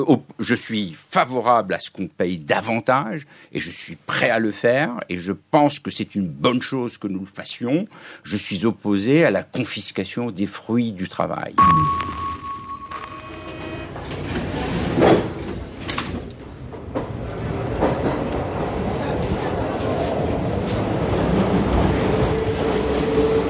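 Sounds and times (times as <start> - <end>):
speech: 0.0 - 12.4
chime-like tones: 11.6 - 14.0
Paris metro train rumbling: 13.6 - 23.4.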